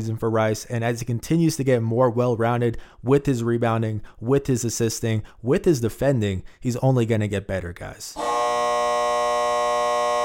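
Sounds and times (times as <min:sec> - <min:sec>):
speech: 0:00.0 - 0:08.5
loud electronic buzzer sounding end of segment: 0:08.2 - 0:10.2.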